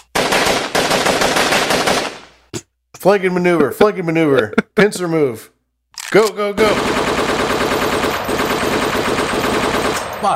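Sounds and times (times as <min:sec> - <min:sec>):
machine gun suppressive fire: 0:00.1 - 0:02.4, 0:06.6 - 0:10.3
speech: 0:03.0 - 0:07.0.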